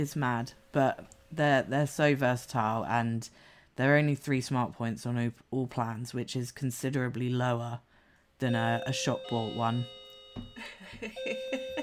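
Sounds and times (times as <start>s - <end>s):
speech: 0.0s - 11.8s
doorbell chiming: 8.6s - 11.8s.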